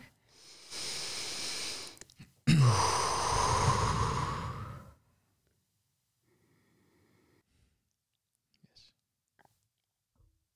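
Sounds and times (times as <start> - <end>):
deep breath inhale: 0.0 - 5.0.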